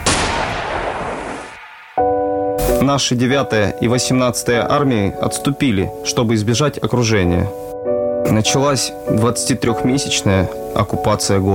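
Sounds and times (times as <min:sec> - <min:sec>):
dense continuous gunfire: 0:00.0 - 0:02.1
speech: 0:02.8 - 0:11.5.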